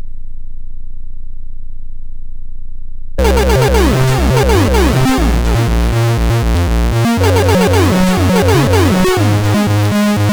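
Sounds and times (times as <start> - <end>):
SID chip chiptune melody: 3.2 - 10.3.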